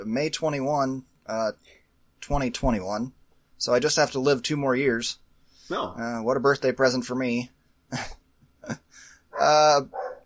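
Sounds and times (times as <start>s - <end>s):
speech: 0.0s - 10.1s
dog barking: 9.3s - 10.2s.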